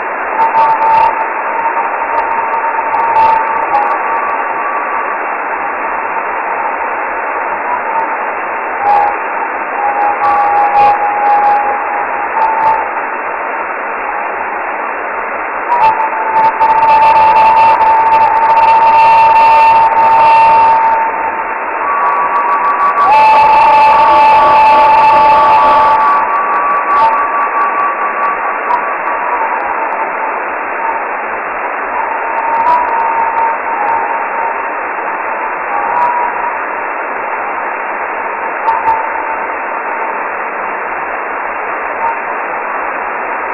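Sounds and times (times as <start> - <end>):
67 MHz radar signal: 0.0 - 43.5.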